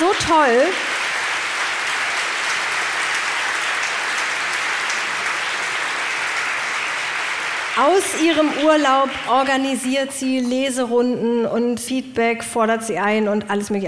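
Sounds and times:
sizeable crowd applauding: 0.0 - 10.2
speech: 0.3 - 0.9, 7.8 - 13.8.

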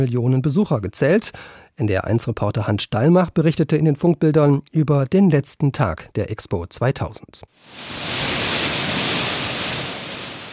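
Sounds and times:
speech: 0.0 - 8.5
large waterfall cascading down a pavilion facade: 7.6 - 10.5.

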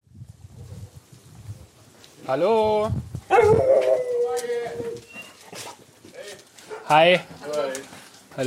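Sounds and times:
speech: 2.3 - 5.0, 6.9 - 8.4
dog howling: 3.3 - 5.4.

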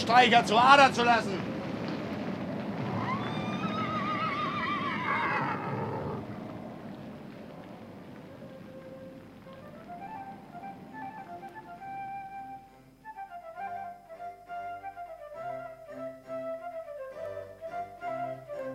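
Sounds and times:
faint scattered outdoor noises: 0.0 - 18.7
speech: 0.1 - 1.4
horse from a horse dealer's team whinnying below a window: 2.8 - 6.9.

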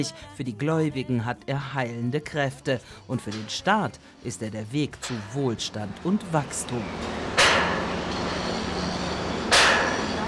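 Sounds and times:
speech: 0.0 - 7.7
busy construction site noise at a dam site: 5.0 - 10.2
construction workers hammering at a dam site: 7.3 - 10.2.

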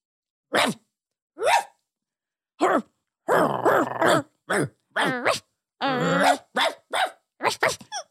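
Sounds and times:
person imitating a dog barking: 0.5 - 0.8, 1.4 - 1.7, 2.6 - 8.1.

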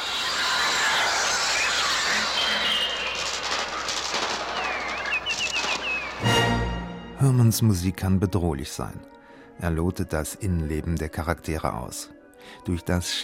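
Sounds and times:
electronic bird cries played on a Trautonium: 0.0 - 6.3
speech: 7.3 - 13.2.

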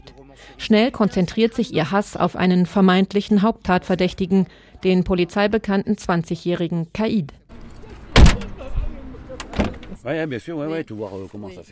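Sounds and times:
speech: 0.3 - 7.4, 10.0 - 11.7
black taxi van door slamming shut: 8.1 - 8.6, 9.4 - 10.0.

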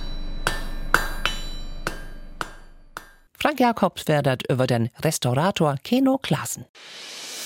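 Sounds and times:
hammer striking metal: 0.0 - 3.3
speech: 3.4 - 7.3.

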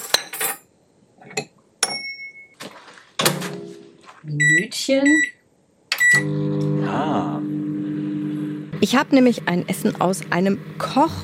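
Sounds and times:
dishes and cutlery clinking and clattering: 0.0 - 2.4
short steady electronic microwave beep: 1.9 - 2.6, 4.3 - 8.7
speech: 4.2 - 5.4, 8.8 - 11.2.

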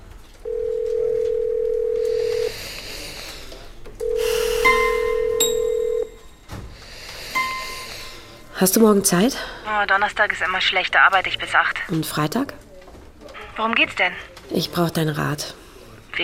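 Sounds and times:
telephone dial tone: 0.5 - 2.5, 4.0 - 6.2
short higher-pitched beeps: 4.2 - 6.3, 7.4 - 7.9
speech: 8.6 - 12.6, 13.6 - 15.6.

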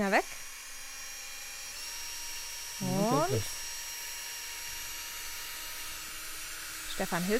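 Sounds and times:
speech: 0.0 - 0.4, 3.3 - 3.6, 7.0 - 7.3
drill boring a small shallow hollow into a clamped wooden board: 0.3 - 7.3
person speaking a single short word: 2.8 - 3.5.

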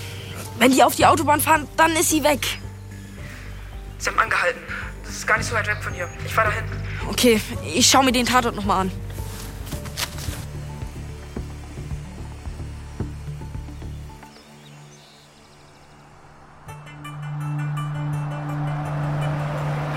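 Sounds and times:
car engine rumbling while driving into a storage shed: 0.0 - 19.9
speech: 0.6 - 2.6, 4.0 - 9.0
steady droning hum in an enclosed space: 10.1 - 19.9.

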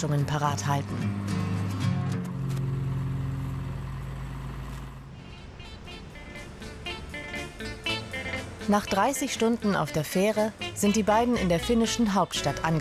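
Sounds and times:
speech: 0.0 - 1.4, 8.7 - 12.7
camper truck engine drone driving east out of Helsinki: 0.0 - 12.7
road rumble: 0.0 - 12.7.

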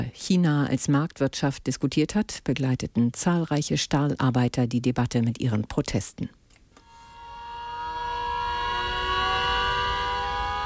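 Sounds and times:
speech: 0.0 - 6.4
shrill whistles at a protest: 6.8 - 10.6
sirens at a protest: 6.8 - 10.6.

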